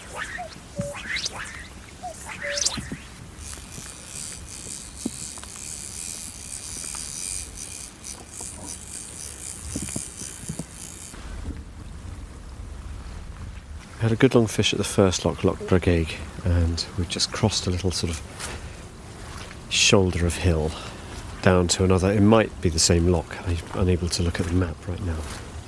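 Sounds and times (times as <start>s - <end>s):
cuckoo calling, echoing around a loch: 0.0s - 3.2s
steady wind: 0.0s - 25.6s
speech: 14.1s - 18.6s, 19.8s - 25.5s.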